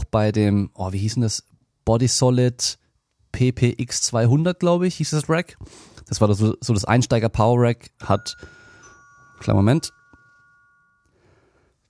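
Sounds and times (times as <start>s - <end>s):
speech: 0.1s - 8.6s, 9.4s - 10.0s
electronic two-tone doorbell chime: 8.0s - 11.5s.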